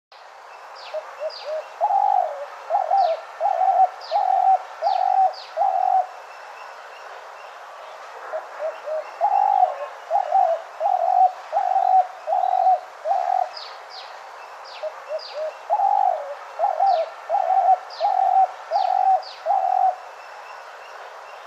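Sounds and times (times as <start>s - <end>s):
spotted dove calling: 0.9s - 6.1s, 8.3s - 13.7s, 14.7s - 20.1s.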